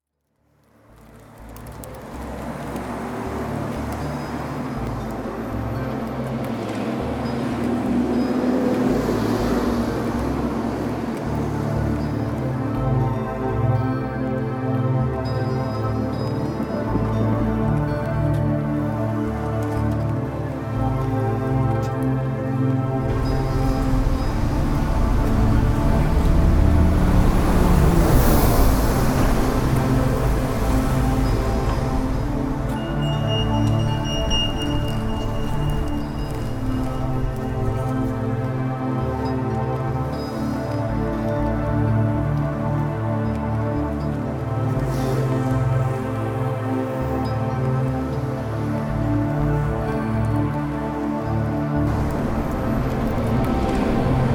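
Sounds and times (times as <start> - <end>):
outdoor soundscape: 0.0 - 54.3.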